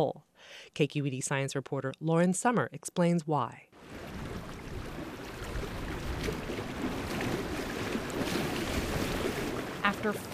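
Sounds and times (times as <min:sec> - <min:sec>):
speech: 0:00.0 - 0:04.2, 0:10.0 - 0:10.3
water lapping on reservoir shore: 0:03.8 - 0:10.3.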